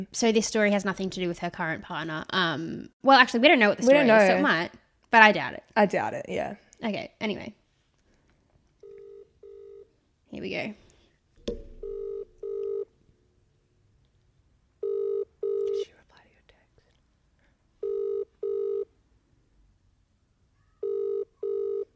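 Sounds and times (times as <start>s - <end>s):
speech: 0.0s - 7.6s, 10.3s - 10.8s, 11.5s - 11.7s
faint hiss: 0.0s - 21.9s
outgoing phone call ringback tone: 8.8s - 9.9s, 11.8s - 12.9s, 14.8s - 15.8s, 17.8s - 18.9s, 20.8s - 21.9s.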